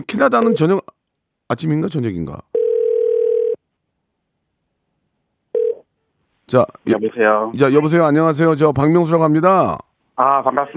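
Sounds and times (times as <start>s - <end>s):
speech: 0.0s - 2.5s, 6.5s - 10.7s
telephone line tone beep: 2.6s - 3.6s.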